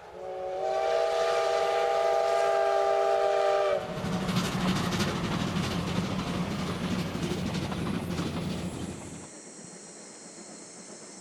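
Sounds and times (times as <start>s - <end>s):
steam locomotive whistle: 0.0s - 4.2s
two steam locomotives chuffing: 0.2s - 9.3s
rattling train carriages: 3.8s - 9.3s.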